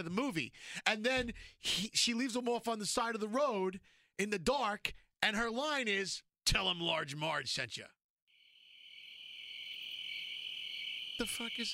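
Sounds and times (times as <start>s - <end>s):
speech: 0.0s - 8.0s, 11.2s - 11.7s
chorus of crickets chirping: 8.3s - 11.7s.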